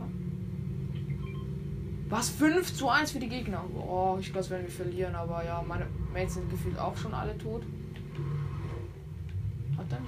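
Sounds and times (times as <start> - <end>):
video game car engine accelerating: 0.0 - 10.0
speech: 2.1 - 8.4.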